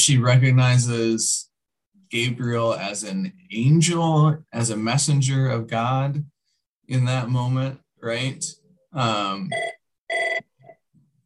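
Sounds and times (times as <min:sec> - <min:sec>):
speech: 0:00.0 - 0:01.5, 0:02.1 - 0:06.3, 0:06.9 - 0:10.2
telephone ringing with short electronic ringtone: 0:09.5 - 0:10.8.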